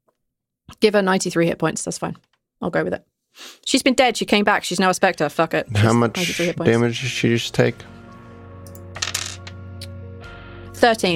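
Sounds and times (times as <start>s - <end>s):
speech: 0.8s - 8.0s, 10.8s - 11.1s
two dice clattering across a hard tabletop: 9.0s - 9.6s.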